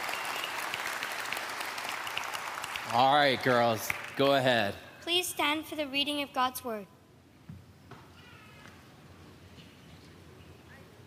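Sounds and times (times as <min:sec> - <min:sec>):
audience applause: 0:00.0 - 0:04.2
speech: 0:02.9 - 0:07.0.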